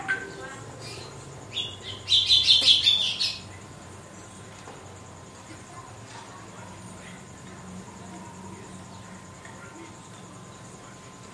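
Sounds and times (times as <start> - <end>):
Red-cowled cardinal female giving high rapid chattering trill: 0.0 - 3.6.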